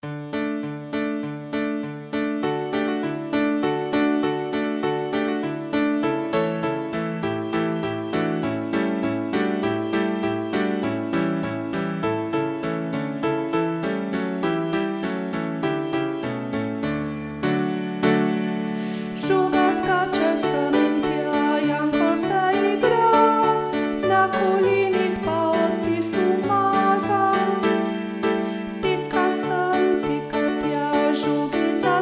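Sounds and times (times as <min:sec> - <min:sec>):
piano: 0:00.0 - 0:32.0
person singing: 0:18.6 - 0:32.0.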